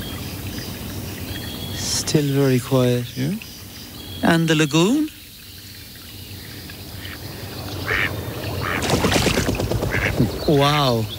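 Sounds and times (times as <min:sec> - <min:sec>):
water and outdoor ambience: 0:00.0 - 0:11.1
speech: 0:02.1 - 0:03.5, 0:04.2 - 0:05.2, 0:10.5 - 0:11.1
mallard ducks quacking: 0:06.6 - 0:11.0
noisy splashing or flapping of mallard ducks: 0:07.8 - 0:11.1.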